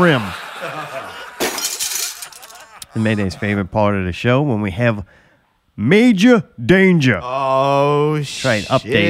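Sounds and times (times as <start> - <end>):
speech: 0.0 - 0.4, 2.9 - 5.2, 5.8 - 9.0
laughter: 0.0 - 3.9
porcelain toilet shattering: 1.4 - 2.6.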